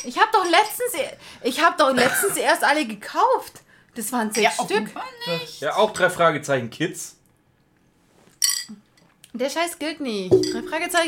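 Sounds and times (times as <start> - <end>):
speech: 0.0 - 7.2, 9.4 - 11.0
glasses clinking in a toast: 8.4 - 8.8, 10.3 - 11.0.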